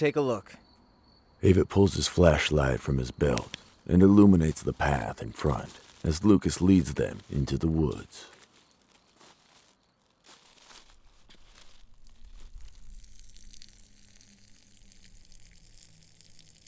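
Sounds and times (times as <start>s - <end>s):
speech: 0.0s - 0.6s, 1.4s - 8.3s
urine stream splashing onto a boot in the woods: 11.4s - 16.6s.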